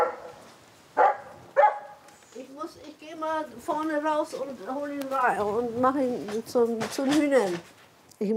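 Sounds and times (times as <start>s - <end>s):
dog barking: 0.0s - 0.4s, 1.0s - 2.0s
faint dog yelp: 1.0s - 2.0s
speech: 3.1s - 8.3s.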